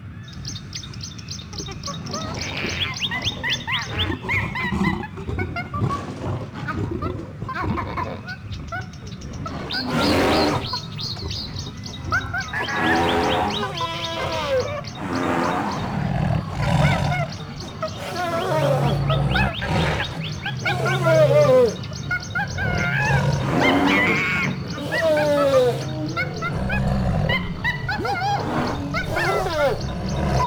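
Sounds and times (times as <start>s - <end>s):
city zoo ambience: 0.0s - 30.4s.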